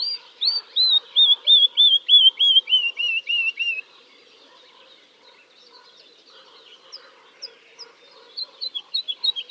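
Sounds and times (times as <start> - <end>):
woodlark singing: 0.0 - 9.5.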